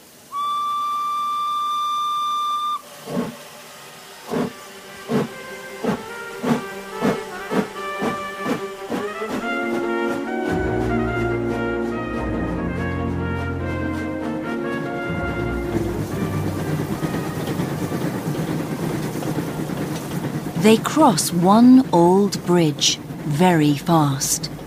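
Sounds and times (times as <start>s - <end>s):
steam locomotive whistle: 0.0s - 19.1s
steam locomotive chuffing and rumbling: 0.0s - 24.6s
speech: 20.6s - 24.6s.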